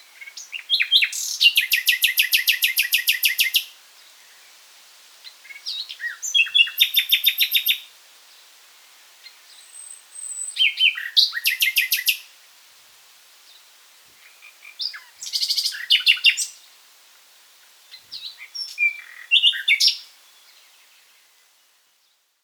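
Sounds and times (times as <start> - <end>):
Common nightingale Luscinia megarhynchos singing: 0.0 - 4.5, 5.5 - 7.8, 9.3 - 12.2, 14.2 - 16.6, 17.9 - 22.2.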